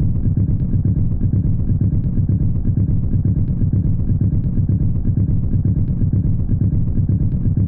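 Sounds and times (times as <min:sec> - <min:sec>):
bass: 0:00.0 - 0:07.6.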